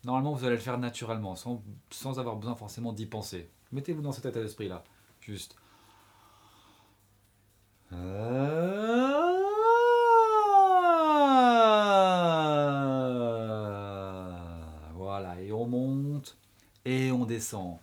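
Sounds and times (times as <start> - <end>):
speech: 0.0 - 5.6, 7.9 - 9.0, 15.7 - 17.8
voice imitating a siren in a sung glide during a vocal warm-up exercise: 7.9 - 15.0.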